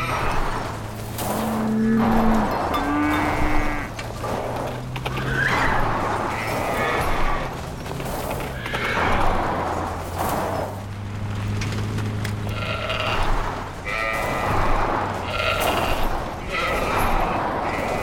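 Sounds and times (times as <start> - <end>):
horses whinnying in a busy farmyard: 0.0 - 10.7, 12.4 - 18.0
cows mooing: 0.0 - 10.8, 12.2 - 18.0
hooves clopping in a busy farmyard: 0.0 - 18.0.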